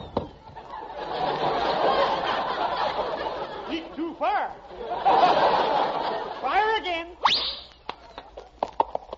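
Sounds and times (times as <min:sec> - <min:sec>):
laughter: 0:00.4 - 0:06.8
horse hooves clip-clopping: 0:08.0 - 0:09.1.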